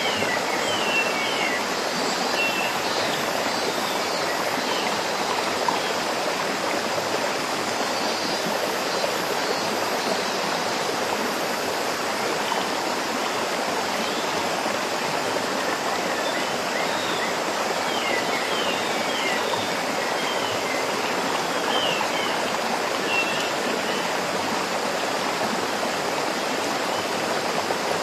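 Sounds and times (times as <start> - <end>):
cicadas singing: 0.0 - 28.0
waterfall: 0.0 - 28.0.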